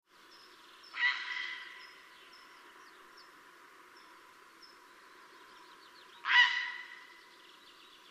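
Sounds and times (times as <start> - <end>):
Grey Heron Ardea cinerea calling: 0.8 - 3.4, 6.0 - 7.3.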